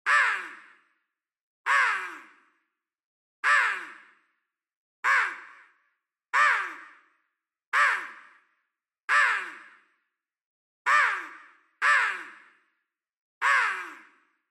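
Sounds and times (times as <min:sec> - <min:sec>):
synthetic crow call: 0:00.0 - 0:00.9, 0:01.7 - 0:02.6, 0:03.4 - 0:04.3, 0:05.0 - 0:05.8, 0:06.4 - 0:08.5, 0:09.1 - 0:10.0, 0:10.9 - 0:12.7, 0:13.4 - 0:14.4.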